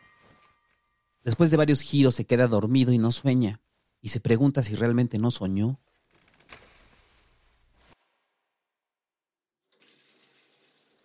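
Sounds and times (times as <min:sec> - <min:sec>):
speech: 0:01.2 - 0:05.9
hot water gushing from a tap or shower: 0:09.8 - 0:11.0.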